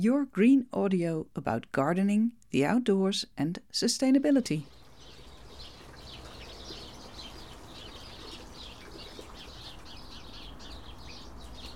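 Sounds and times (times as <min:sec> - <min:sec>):
speech: 0:00.0 - 0:04.8
house sparrows chirping: 0:04.3 - 0:11.7
rain falling: 0:04.7 - 0:11.7.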